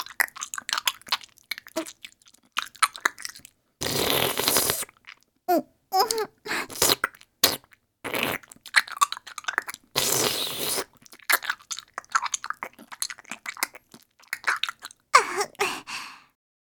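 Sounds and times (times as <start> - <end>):
wet chewing and squelching of lumpy clotted milk in the mouth: 0.0 - 5.3, 6.0 - 16.0
hissing slurp: 3.8 - 5.0, 6.5 - 16.0.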